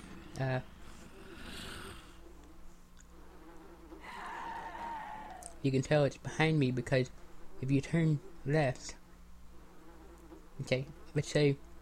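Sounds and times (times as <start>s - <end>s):
bees buzzing around a corpse: 0.0s - 11.8s
speech: 0.4s - 0.7s, 5.6s - 9.0s, 10.6s - 11.7s.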